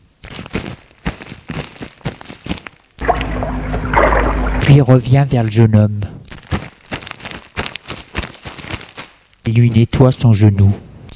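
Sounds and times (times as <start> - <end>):
water splashing as a white handkerchief is dipped and wetted: 3.0 - 5.0
speech: 4.8 - 6.1, 9.5 - 10.9.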